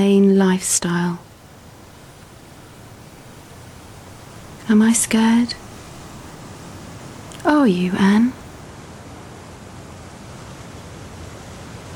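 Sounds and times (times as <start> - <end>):
speech: 0.0 - 1.3, 4.7 - 5.6, 7.6 - 8.4
sea waves rushing: 1.2 - 8.6.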